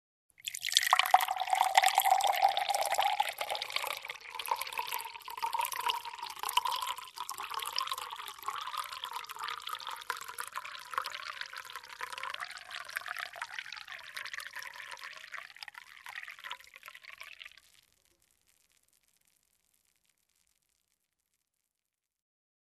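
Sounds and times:
water pouring into a glass: 0.4s - 17.7s.

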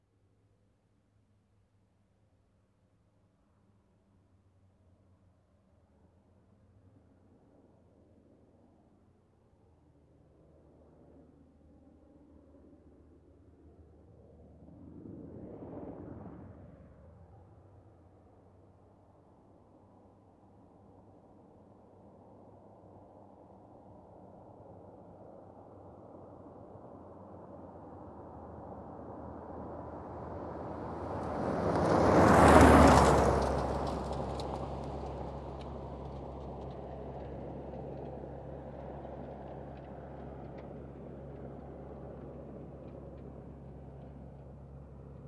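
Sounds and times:
car driving by on asphalt road: 27.1s - 45.2s.

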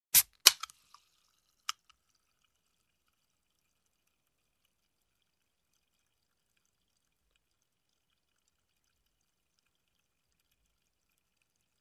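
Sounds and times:
soda can opening: 0.1s - 1.9s.

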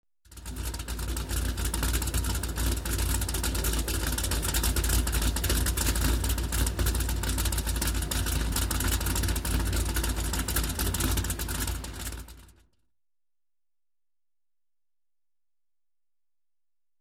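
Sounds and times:
cruiser motorcycle engine idling: 0.3s - 12.6s.

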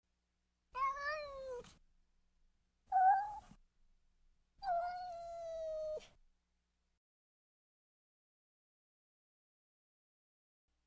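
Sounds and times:
cat meowing softly: 0.8s - 1.8s, 2.9s - 3.6s, 4.6s - 6.2s.

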